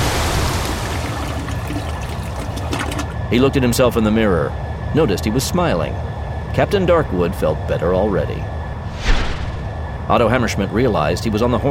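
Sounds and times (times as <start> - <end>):
toilet flushing: 0.0 - 3.3
speech: 3.3 - 8.6, 10.1 - 11.6.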